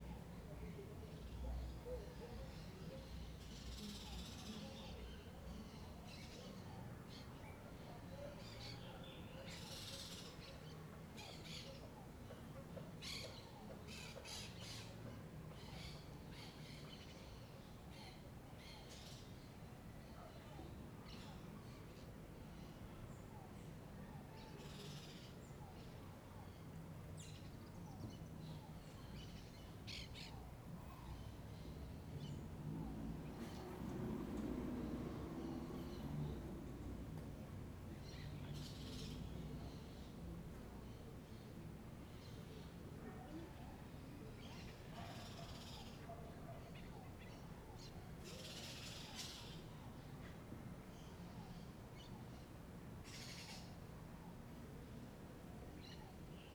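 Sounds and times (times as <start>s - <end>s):
birds in an alley: 0.0s - 56.5s
distant motorcycle: 31.7s - 39.2s.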